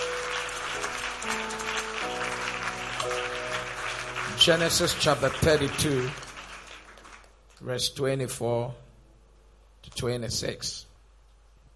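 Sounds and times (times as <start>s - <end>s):
sustained keyboard chords: 0.0s - 6.7s
audience clapping hands: 0.0s - 7.8s
speech: 4.4s - 6.2s, 7.6s - 8.8s, 9.9s - 10.9s.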